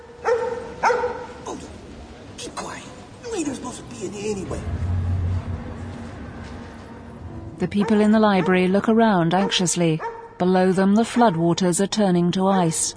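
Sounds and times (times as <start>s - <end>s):
tramp's dog barking in a library: 0.2s - 1.4s, 7.8s - 8.7s, 9.4s - 10.3s
dull rumble: 1.4s - 10.4s
speech: 3.4s - 4.9s, 7.6s - 12.9s.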